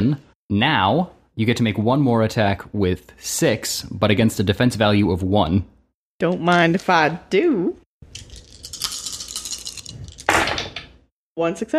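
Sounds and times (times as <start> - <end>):
speech: 0.1 - 8.3, 11.4 - 11.7
handful of dice clattering across a hard surface: 8.1 - 11.0.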